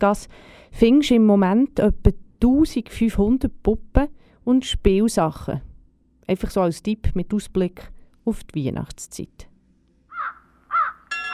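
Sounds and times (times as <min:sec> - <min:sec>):
speech: 0:00.0 - 0:05.7, 0:06.3 - 0:09.5
raven calling with harsh hoarse croaking: 0:10.1 - 0:11.3.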